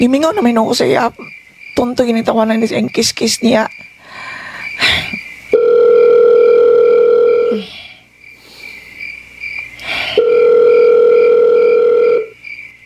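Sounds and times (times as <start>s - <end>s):
speech: 0.0s - 5.2s
telephone tones while a call is being placed: 5.6s - 7.6s, 10.1s - 12.3s.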